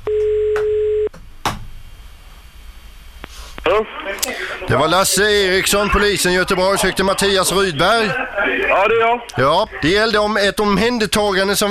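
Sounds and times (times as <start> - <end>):
telephone ringing tone: 0.1 - 1.1
speech: 3.8 - 11.6.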